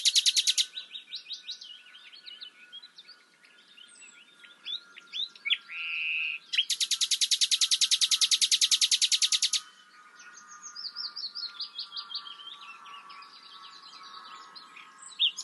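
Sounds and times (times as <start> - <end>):
common nightingale Luscinia megarhynchos singing: 0.0 - 15.4.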